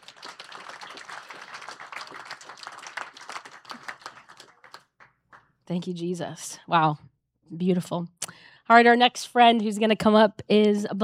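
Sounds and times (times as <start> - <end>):
crowd applauding: 0.0 - 5.5
speech: 5.7 - 11.0.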